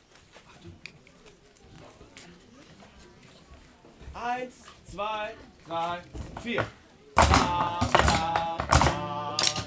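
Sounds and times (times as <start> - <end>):
speech: 4.2 - 6.8, 7.5 - 8.6
drumming: 7.2 - 9.6.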